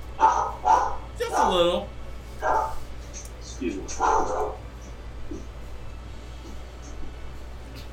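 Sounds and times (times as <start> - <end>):
quiet room hum: 0.0 - 7.9
dog bark: 0.2 - 1.5, 2.4 - 2.8, 4.0 - 4.6
speech: 1.4 - 2.5.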